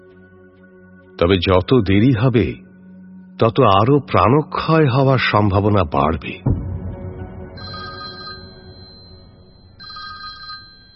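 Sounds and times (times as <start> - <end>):
speech: 1.2 - 2.7, 3.4 - 6.5
telephone ringing with bright electronic trilling: 7.6 - 10.9.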